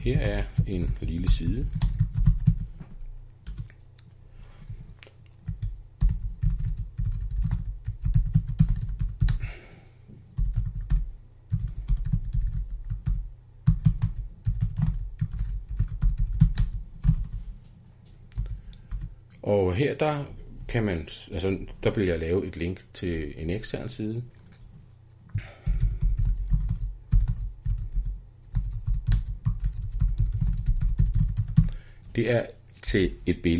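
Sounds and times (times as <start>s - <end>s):
speech: 0.0s - 2.0s, 19.8s - 24.4s, 32.2s - 33.5s
typing on a computer keyboard: 0.2s - 2.7s, 5.4s - 9.4s, 10.4s - 17.4s, 25.6s - 31.8s.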